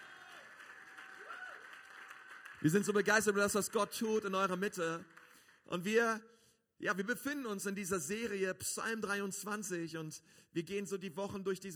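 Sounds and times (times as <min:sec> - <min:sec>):
audience applause: 0:00.0 - 0:05.6
speech: 0:02.6 - 0:11.7.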